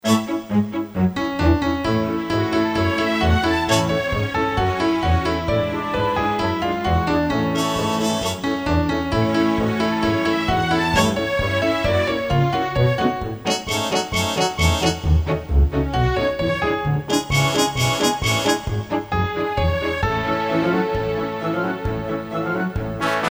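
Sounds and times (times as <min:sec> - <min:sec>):
accompaniment: 0:00.0 - 0:23.3
lead melody: 0:00.0 - 0:23.3.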